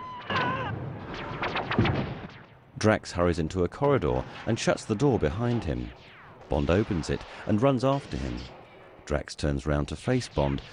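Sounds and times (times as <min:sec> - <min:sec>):
gunfire in a film scene: 0:00.4 - 0:02.6
speech: 0:02.8 - 0:10.7.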